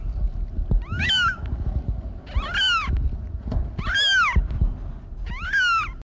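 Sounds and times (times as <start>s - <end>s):
low background rumble: 0.0s - 6.0s
cat meowing: 0.8s - 1.5s, 2.3s - 2.9s, 3.8s - 4.5s, 5.2s - 6.0s.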